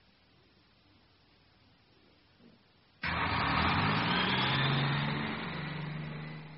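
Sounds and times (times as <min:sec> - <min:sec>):
school bus engine rumbling: 0:03.0 - 0:06.5.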